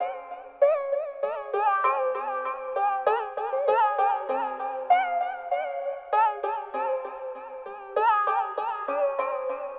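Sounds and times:
koto in C minor: 0.0s - 9.7s.

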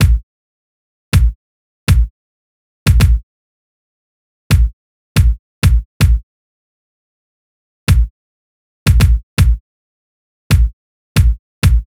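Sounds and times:
kick drum in C minor: 0.0s - 0.3s, 1.2s - 2.1s, 2.9s - 3.2s, 4.5s - 6.2s, 7.9s - 8.1s, 8.9s - 9.6s, 10.5s - 11.9s.

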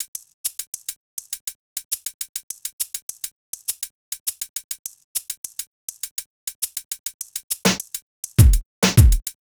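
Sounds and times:
drums in F minor: 0.0s - 9.3s.

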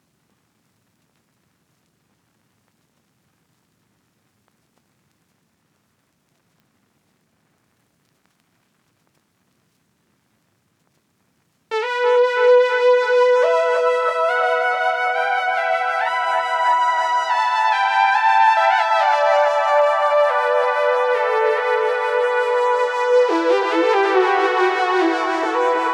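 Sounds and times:
B minor lead melody: 11.7s - 25.9s.

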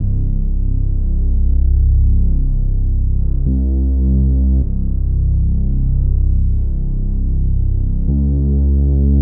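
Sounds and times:
bass: 0.0s - 9.2s.

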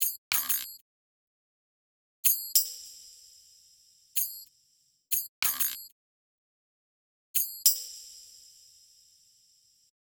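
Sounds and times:
exotic hip hop percussion: 0.0s - 0.8s, 2.3s - 5.9s, 7.4s - 9.6s.

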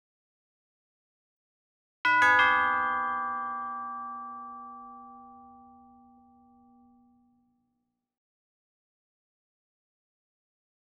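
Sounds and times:
bells in exotic hip hop loop in G minor: 2.1s - 6.8s.

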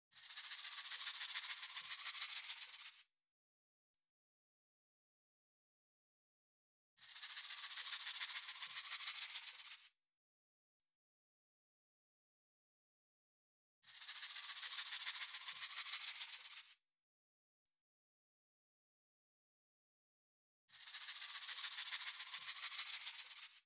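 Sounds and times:
shakers in a hip hop rhythm: 0.2s - 3.0s, 7.0s - 9.9s, 13.9s - 16.8s, 20.7s - 23.6s.

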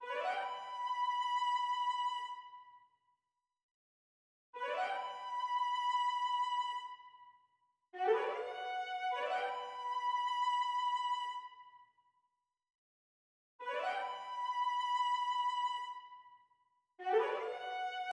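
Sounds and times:
violin in B minor: 0.0s - 2.6s, 4.6s - 7.2s, 8.0s - 11.6s, 13.6s - 16.3s, 17.0s - 18.1s.

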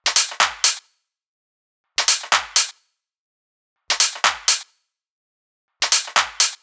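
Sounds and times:
EDM future house drop top loop: 0.0s - 0.8s, 2.0s - 2.7s, 3.9s - 4.6s, 5.8s - 6.6s.

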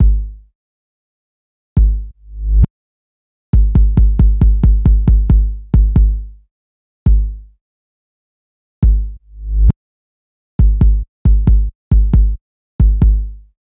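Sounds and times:
kick drum in B minor: 0.0s - 0.4s, 1.8s - 2.1s, 3.6s - 6.3s, 7.1s - 7.4s, 8.8s - 9.2s, 10.6s - 13.4s.

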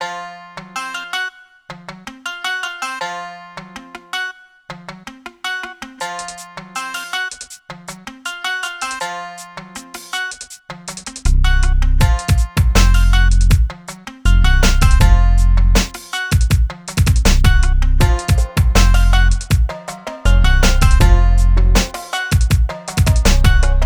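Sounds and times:
exotic hip hop beat in F minor: 8.8s - 23.8s.

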